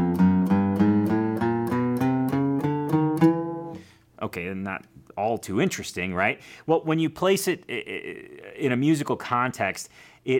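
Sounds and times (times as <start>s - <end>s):
guitar playing a chromatic scale fretting every single fret: 0.0s - 4.0s
speech: 4.3s - 10.3s.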